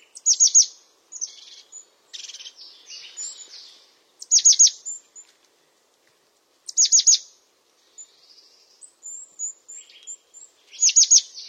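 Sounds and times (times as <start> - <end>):
European crested tit song with sharp descending notes and thin high whistles: 0.0 - 5.2, 6.7 - 11.4.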